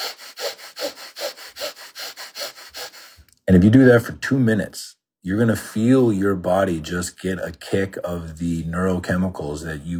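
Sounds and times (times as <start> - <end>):
person doing rapid forceful fire breathing through the nose: 0.0 - 3.3
speech: 3.5 - 9.9.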